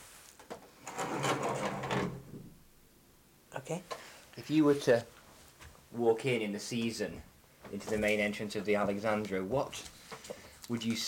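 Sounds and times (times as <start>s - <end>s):
door being shut: 0.9s - 2.6s
speech: 3.6s - 5.2s, 5.9s - 10.0s, 10.7s - 11.0s.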